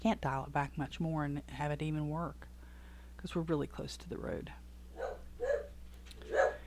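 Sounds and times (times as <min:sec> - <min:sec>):
speech: 0:00.0 - 0:02.5, 0:03.2 - 0:04.6
dog barking: 0:05.0 - 0:06.6.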